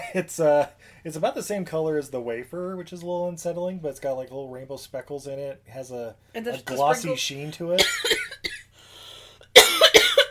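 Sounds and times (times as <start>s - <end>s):
speech: 0.1s - 8.2s
woman coughing while eating: 7.8s - 8.7s, 9.6s - 10.2s.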